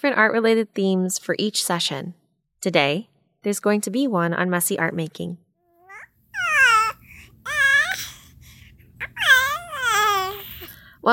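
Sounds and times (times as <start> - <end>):
speech: 0.0 - 5.4
baby girl babbling and cooing to herself on a bed: 5.7 - 10.8.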